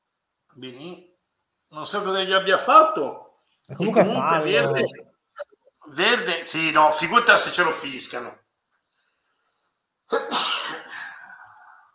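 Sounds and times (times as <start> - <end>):
speech: 0.6 - 1.1, 1.7 - 8.4
loud sneeze from an allergy: 10.1 - 11.3.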